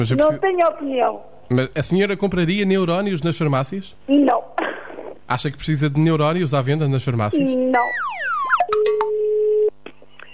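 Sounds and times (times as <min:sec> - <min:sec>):
speech: 0:00.0 - 0:04.6, 0:05.3 - 0:08.2
telephone line tones as a call is placed: 0:07.7 - 0:09.7.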